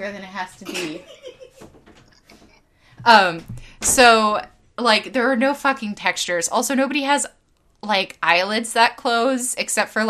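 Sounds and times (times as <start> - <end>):
speech: 0.0 - 1.2, 3.0 - 10.0
door creaking as opened: 1.5 - 2.6.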